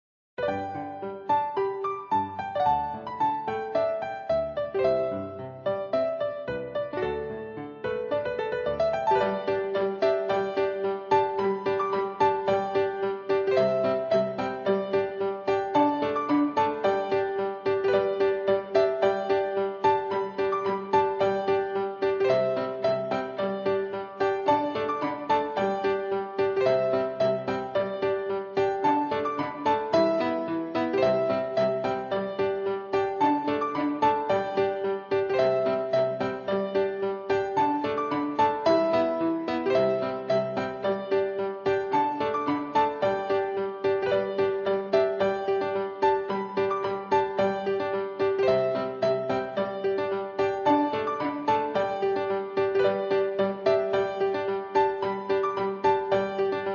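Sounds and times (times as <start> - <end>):
piano: 0.4 - 56.7
strings: 6.6 - 56.7.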